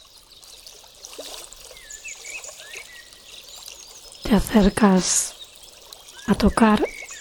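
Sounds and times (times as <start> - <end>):
water trickling and gurgling in a nearby stream: 0.0 - 7.1
faint thin bird chirps: 1.6 - 7.1
speech: 4.3 - 5.4, 6.3 - 6.9.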